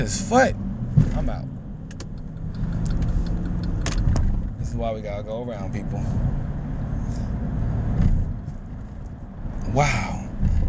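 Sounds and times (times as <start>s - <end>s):
speech: 0.0s - 1.5s, 4.7s - 6.5s, 9.7s - 10.6s
deep rumble of engine and road noise in a moving car cabin: 0.0s - 10.6s
faint regular ticking clicks: 1.9s - 4.2s.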